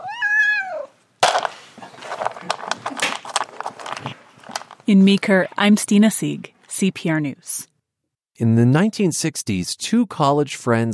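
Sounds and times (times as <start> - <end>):
cat meowing: 0.0 - 1.0
crinkling and rustling: 1.2 - 5.7
speech: 4.9 - 7.7, 8.4 - 10.9.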